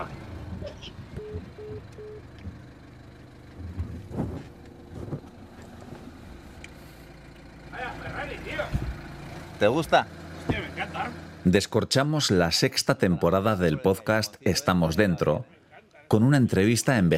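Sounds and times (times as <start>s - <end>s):
car engine reversing near garage door: 0.0s - 11.8s
short beeps: 1.2s - 2.2s
speech: 9.6s - 10.2s, 11.0s - 17.1s.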